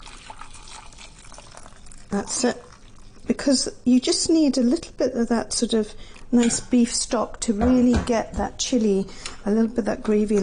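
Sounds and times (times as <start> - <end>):
hot water pouring into a jug: 0.0 - 3.4
speech: 2.1 - 10.4.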